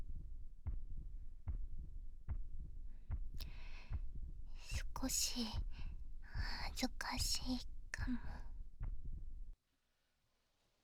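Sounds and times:
heartbeat, slightly quickened: 0.0s - 9.6s
speech: 5.0s - 5.8s, 6.4s - 8.5s.

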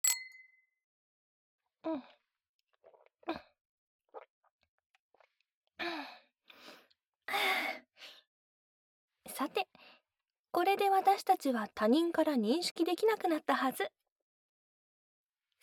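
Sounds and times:
glasses clinking in a toast: 0.0s - 0.5s
speech: 1.8s - 2.2s, 10.7s - 14.0s
soft breathy sighs and gasps: 5.8s - 8.2s.

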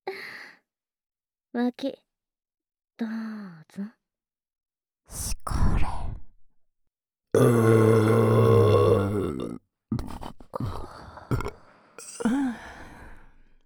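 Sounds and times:
speech: 1.5s - 2.0s, 3.0s - 4.0s, 5.1s - 6.1s, 7.4s - 8.3s
long loud drawn-out burp: 7.4s - 10.1s, 11.3s - 11.6s
short rough belching: 7.4s - 10.2s, 11.3s - 11.6s.

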